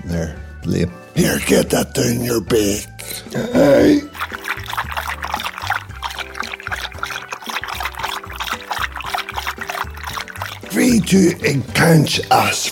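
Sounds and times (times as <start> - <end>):
speech: 0.1 - 4.4, 11.1 - 12.6
water pouring into a glass: 3.6 - 12.6.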